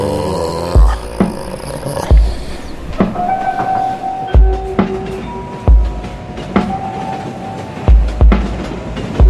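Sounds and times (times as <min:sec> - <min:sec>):
underground train rolling on rails: 0:00.0 - 0:09.2
faint metallic squeals: 0:02.4 - 0:07.9.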